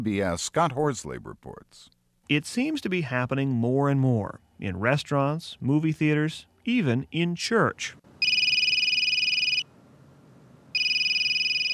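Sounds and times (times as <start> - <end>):
speech: 0.0 - 8.0
cell phone ringing with a shrill warbling electronic trill: 8.2 - 9.7, 10.8 - 11.7.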